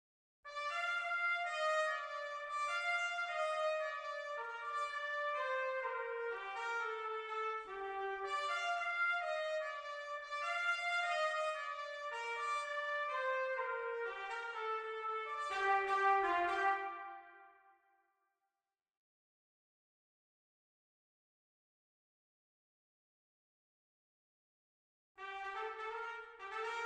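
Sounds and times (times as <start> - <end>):
B-flat trumpet: 0.5 - 17.7, 25.2 - 26.8.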